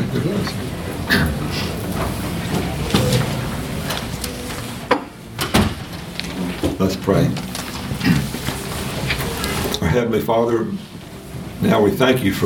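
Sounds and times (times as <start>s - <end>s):
church audience murmuring and shuffling at a worship service: 0.0s - 12.4s
door swinging shut with a solid thud: 5.4s - 6.8s
speech: 6.9s - 8.3s, 10.0s - 10.9s, 11.6s - 12.4s.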